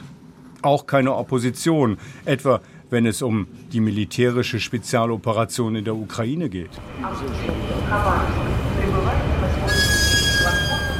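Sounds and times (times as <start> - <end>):
speech: 0.6 - 8.5
Trans-Siberian railway train rumble at Khabarovsk station in Russia: 6.8 - 10.9
high sustained metallic squeal of train wheels or brakes: 9.6 - 10.9.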